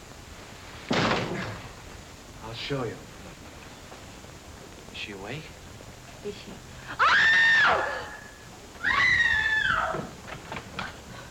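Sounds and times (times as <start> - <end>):
speech: 2.5 - 3.1, 5.0 - 5.6, 6.2 - 8.0
woman screaming: 6.9 - 10.1.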